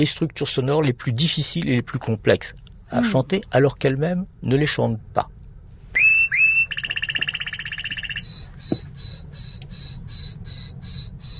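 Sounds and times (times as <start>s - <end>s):
speech: 0.0s - 5.4s
low rumble: 0.0s - 11.3s
songbird song phrase with buzzy rattle and whistled notes: 6.0s - 11.3s.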